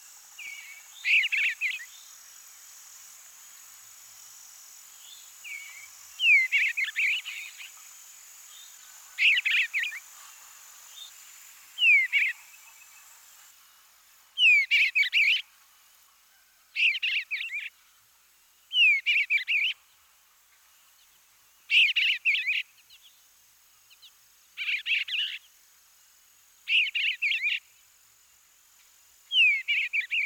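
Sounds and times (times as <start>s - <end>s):
faint steady insect hum: 0.0s - 30.2s
eastern bluebird singing its full song: 0.4s - 2.2s, 5.0s - 7.8s, 11.8s - 13.1s, 14.4s - 15.5s, 16.8s - 17.8s, 18.7s - 20.0s, 20.9s - 23.2s, 23.9s - 25.5s, 26.6s - 27.8s, 29.3s - 30.2s.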